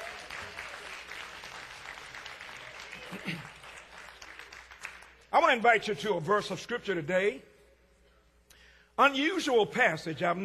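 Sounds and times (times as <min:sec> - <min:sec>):
large crowd clapping: 0:00.0 - 0:05.6
speech: 0:03.1 - 0:03.5, 0:05.4 - 0:07.5, 0:09.0 - 0:10.4.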